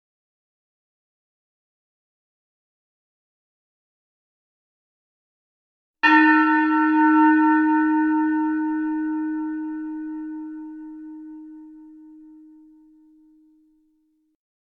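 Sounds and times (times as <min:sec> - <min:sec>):
meditation bell ringing: 0:06.0 - 0:13.8.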